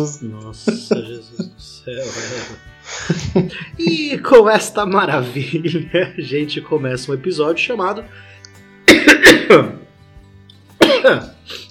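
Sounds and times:
laughter: 0.0 - 4.3
speech: 0.0 - 8.4, 9.2 - 9.8, 11.0 - 11.6
loud fit of harsh coughing: 8.9 - 9.8, 10.8 - 11.7.

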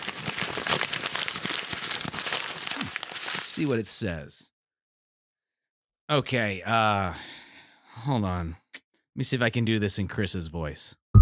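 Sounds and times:
sheet of paper being crinkled and unfolded: 0.0 - 3.8
speech: 3.6 - 4.6, 6.1 - 7.4, 8.0 - 8.6, 9.2 - 11.0.

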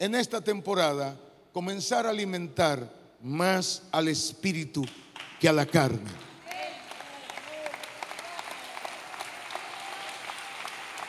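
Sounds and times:
speech: 0.0 - 6.3
audience applauding: 4.8 - 11.0.

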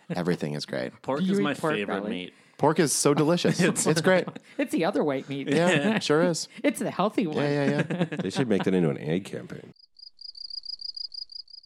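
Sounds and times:
laughter: 0.0 - 0.6, 2.8 - 9.5
speech: 0.1 - 9.8
crickets chirping: 9.8 - 11.6.

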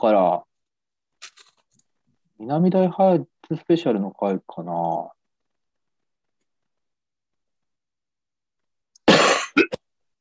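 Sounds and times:
speech: 0.0 - 0.5, 2.4 - 5.2
person coughing: 9.0 - 9.9.

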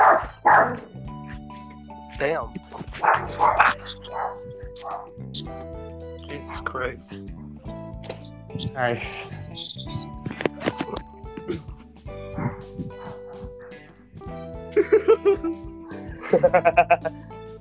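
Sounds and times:
dog barking in the room: 0.0 - 1.4, 3.0 - 5.1, 12.3 - 13.8
speech: 0.6 - 1.4, 2.2 - 7.4, 8.1 - 10.0, 14.8 - 15.7, 16.3 - 17.2
laughter: 10.3 - 11.8, 14.8 - 17.2.

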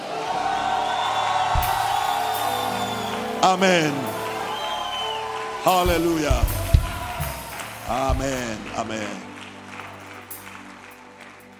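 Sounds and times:
whoops from a church audience: 0.0 - 3.4, 4.0 - 7.8
church audience at a worship service clapping and cheering: 0.0 - 11.5
speech: 3.4 - 4.1, 5.6 - 6.6, 7.9 - 9.3.

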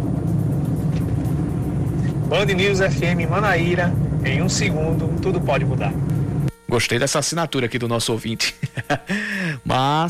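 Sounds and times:
highway traffic rumble of passing cars with faint tire hiss: 0.0 - 6.5
speech: 2.3 - 10.0
laughter: 8.4 - 9.6.

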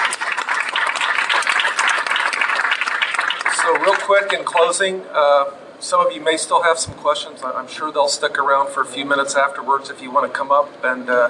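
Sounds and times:
crowd applauding: 0.0 - 4.8
speech: 3.7 - 11.2.

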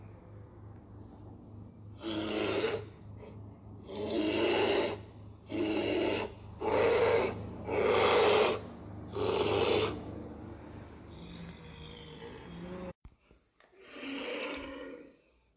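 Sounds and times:
huge bear roaring at a shallow stony river: 2.0 - 10.1, 11.0 - 12.9, 13.8 - 15.3.

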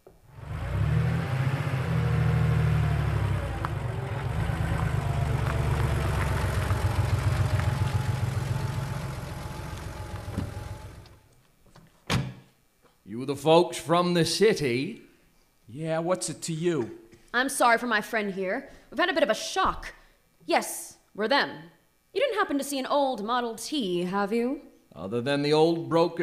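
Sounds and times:
old farm truck engine chugging: 1.4 - 11.2
speech: 13.2 - 15.0, 15.7 - 26.2.

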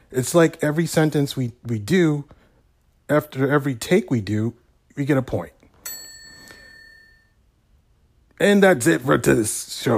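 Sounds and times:
speech: 0.1 - 2.4, 3.1 - 5.6, 8.4 - 9.9
single bright bell ding: 5.8 - 7.4.

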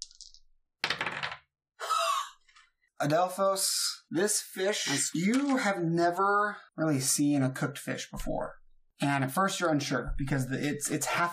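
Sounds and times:
dice rolling on a hard table: 0.0 - 1.5
speech: 3.0 - 11.3.

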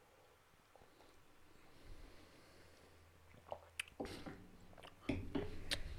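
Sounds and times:
slurping and swallowing an alcoholic drink: 3.3 - 5.1.

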